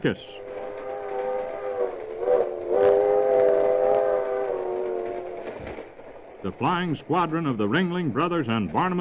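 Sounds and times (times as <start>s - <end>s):
speech: 0.0s - 0.5s, 6.4s - 9.0s
rolling rumble of train cars: 0.0s - 9.0s
train whistle holding a long steady chord: 0.2s - 5.9s.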